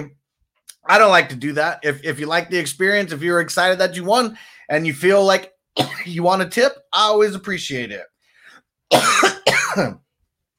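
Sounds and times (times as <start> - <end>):
speech: 0.0 - 0.2, 0.8 - 8.1, 8.9 - 10.0
loud harsh coughs: 5.8 - 6.1, 8.9 - 10.0.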